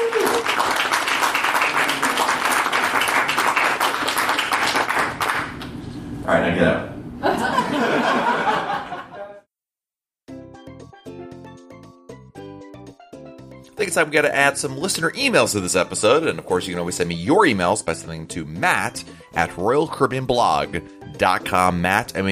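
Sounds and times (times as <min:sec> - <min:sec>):
crowd clapping: 0:00.0 - 0:05.7
people laughing: 0:07.2 - 0:09.4
speech: 0:14.0 - 0:22.3.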